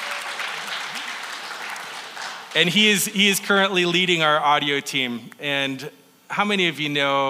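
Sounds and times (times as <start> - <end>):
audience applause: 0.0 - 3.0
speech: 2.5 - 7.2.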